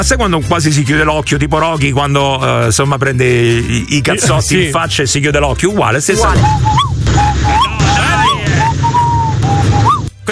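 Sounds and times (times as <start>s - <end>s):
speech: 0.0s - 7.6s
person imitating an owl hoot with whistled calls: 6.2s - 10.0s.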